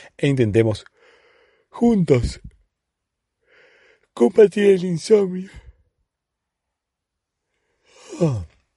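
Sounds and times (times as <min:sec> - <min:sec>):
speech: 0:00.2 - 0:01.0, 0:01.7 - 0:02.6, 0:04.2 - 0:05.6, 0:08.2 - 0:08.5
breathy yawn: 0:07.8 - 0:08.6.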